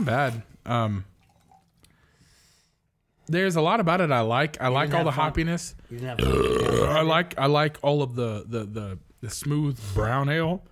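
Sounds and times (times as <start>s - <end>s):
speech: 0.0s - 1.1s, 3.3s - 10.7s
water pouring into a glass: 1.2s - 1.8s.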